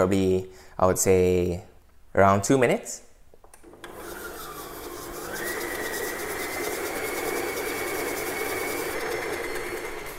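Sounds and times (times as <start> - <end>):
speech: 0.0 - 3.0
electric stand mixer with paddle attachment beating batter until fluffy: 3.6 - 10.1.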